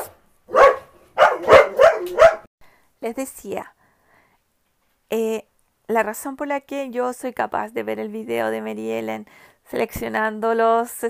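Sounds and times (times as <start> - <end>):
dogs barking: 0.0 - 2.5
speech: 3.0 - 3.8, 5.1 - 11.0.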